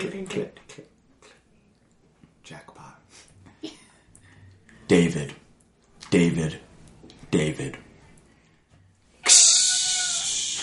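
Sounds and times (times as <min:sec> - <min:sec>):
speech: 0:00.0 - 0:00.9, 0:04.9 - 0:05.4, 0:06.1 - 0:06.6, 0:07.3 - 0:07.8
cat meowing: 0:09.3 - 0:10.6.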